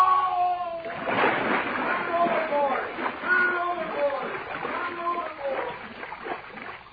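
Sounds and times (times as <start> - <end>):
strained voices crying out for help: 0.0 - 0.9, 2.1 - 5.7
man falling overboard with a heavy splash into water: 0.0 - 6.9.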